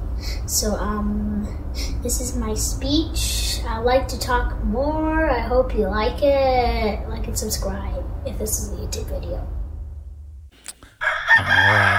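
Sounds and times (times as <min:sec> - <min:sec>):
speech: 0:00.5 - 0:09.6
brief click: 0:10.6 - 0:11.0
rooster crowing: 0:11.0 - 0:11.9.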